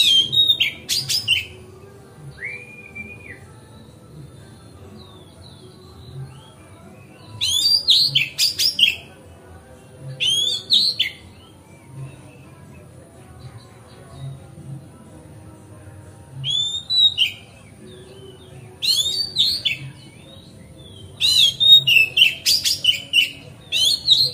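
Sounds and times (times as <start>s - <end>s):
Oriental magpie-robin singing rich whistles and harsh chattering on a terrace: 0.0s - 1.6s, 7.3s - 9.0s, 10.2s - 11.2s, 16.4s - 17.5s, 18.8s - 20.1s, 20.8s - 24.3s.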